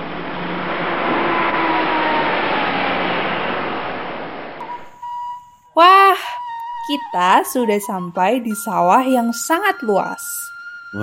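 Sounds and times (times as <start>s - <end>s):
bus engine and road noise while driving: 0.0s - 4.6s
faint tonal whines: 0.0s - 11.0s
speech: 6.9s - 11.0s.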